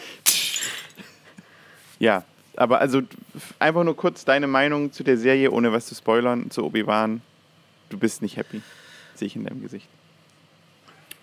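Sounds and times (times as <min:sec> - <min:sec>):
crash of shattering glass: 0:00.2 - 0:01.0
speech: 0:02.0 - 0:07.3, 0:07.9 - 0:10.0.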